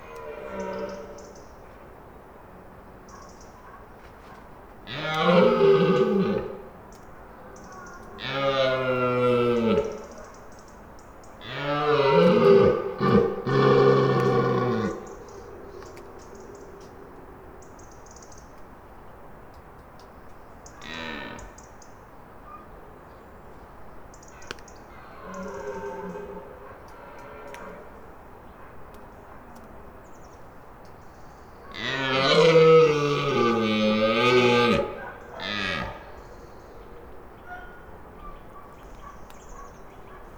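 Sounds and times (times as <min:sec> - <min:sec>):
red deer stags roaring near a garden: 0:04.9 - 0:06.8, 0:08.2 - 0:10.2, 0:11.4 - 0:16.2, 0:25.1 - 0:28.0, 0:31.7 - 0:37.0.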